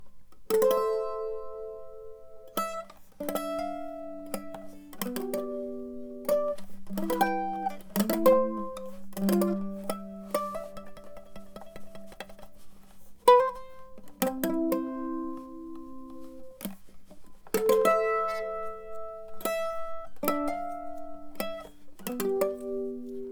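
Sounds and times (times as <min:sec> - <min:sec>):
dry mandolin playing a sarabande: 0:00.0 - 0:23.3.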